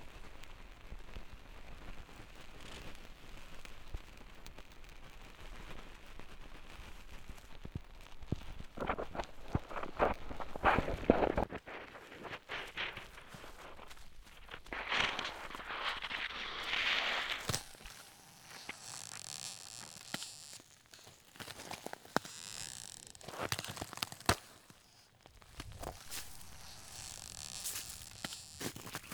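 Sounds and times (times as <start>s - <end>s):
footsteps crunching through snow in the Jura in winter: 8.9s - 29.1s
brushing microphone handling sounds: 17.4s - 29.1s.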